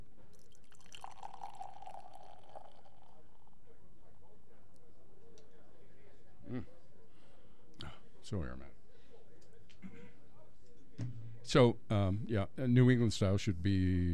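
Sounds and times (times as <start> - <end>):
canned amber West Coast beer pouring into a glass: 0.3 - 3.8
speech: 8.3 - 8.8, 11.5 - 14.1
soft knock: 11.0 - 11.4.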